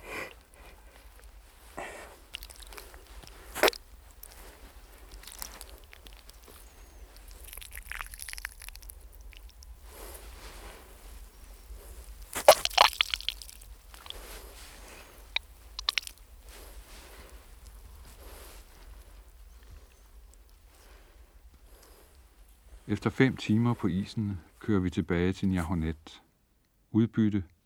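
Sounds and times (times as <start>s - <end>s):
blood squeezed from a bullet hole in a dead seal's neck, gurgling: 0.0s - 18.8s
sharp wet pops: 0.5s - 10.3s, 12.1s - 18.8s
squishy pressing noises of a man squeezing a dead seal on the ice: 2.2s - 10.1s, 12.2s - 16.8s
speech: 22.9s - 26.2s, 26.9s - 27.5s.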